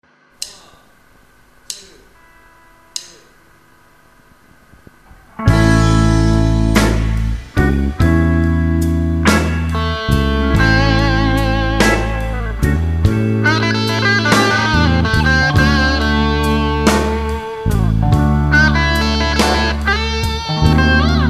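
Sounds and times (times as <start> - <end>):
Nocaster guitar on bridge pickup: 4.5 - 21.2.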